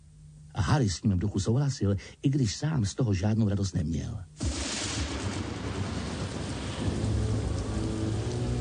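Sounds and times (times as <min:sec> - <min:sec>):
speech: 0:00.7 - 0:04.4
deep rumble of thunder: 0:04.4 - 0:08.5
heavy rain from a night storm around a hut: 0:04.4 - 0:08.5.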